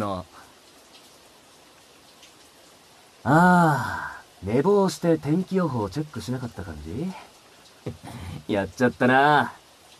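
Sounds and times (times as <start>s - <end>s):
steady rain falling: 0.0s - 9.9s
speech: 3.2s - 9.6s.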